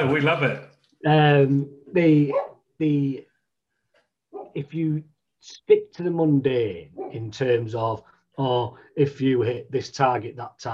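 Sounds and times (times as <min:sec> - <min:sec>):
speech: 0:00.0 - 0:03.3, 0:04.5 - 0:10.7
dog barking: 0:02.3 - 0:02.6, 0:04.4 - 0:04.6, 0:07.0 - 0:07.2.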